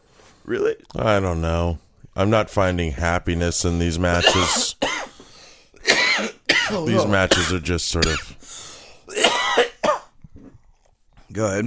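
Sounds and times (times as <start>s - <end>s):
speech: 0.4s - 4.7s, 6.7s - 9.2s, 11.3s - 11.6s
person coughing: 4.2s - 5.1s, 5.8s - 8.4s, 9.1s - 10.1s.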